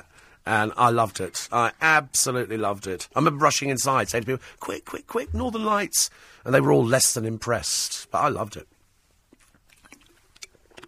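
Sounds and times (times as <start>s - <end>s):
speech: 0.4s - 8.8s
person sipping water with wet slurping: 9.3s - 10.8s.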